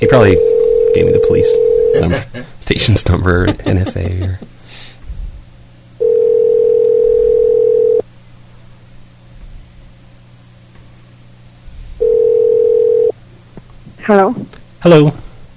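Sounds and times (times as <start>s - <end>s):
faint phone line hiss: 0.0s - 2.2s, 6.0s - 8.1s, 12.0s - 13.2s
speech: 0.0s - 4.5s, 14.1s - 15.2s
telephone ringback tone of an outgoing test call through a phone line: 0.3s - 2.1s, 6.0s - 8.0s, 12.0s - 13.1s
laughter: 1.9s - 2.6s, 3.2s - 4.5s.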